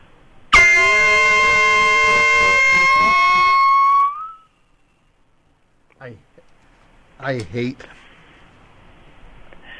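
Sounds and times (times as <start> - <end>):
loud sustained air horn blast: 0.5 - 4.4.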